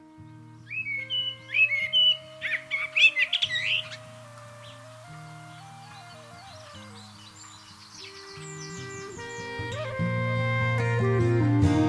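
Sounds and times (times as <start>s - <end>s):
common blackbird song of whistled phrases and twittering notes: 0.0s - 11.2s.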